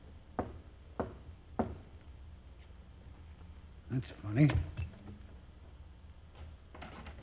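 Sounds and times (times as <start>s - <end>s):
firm knocking on a door: 0.4s - 1.9s
speech: 3.9s - 4.8s.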